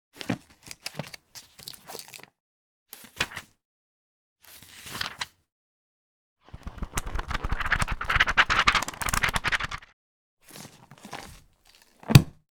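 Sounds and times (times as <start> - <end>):
pages of a book or notebook turning: 6.5 - 9.9.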